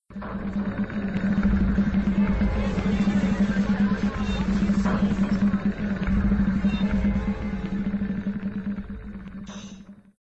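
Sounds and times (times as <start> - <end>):
tense sounds: 0.1 - 9.8.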